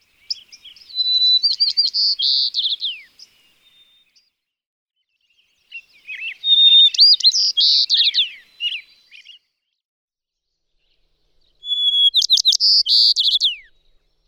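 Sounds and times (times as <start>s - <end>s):
White-crowned Sparrow calling: 0.1s - 3.4s, 5.7s - 9.2s, 11.5s - 14.2s.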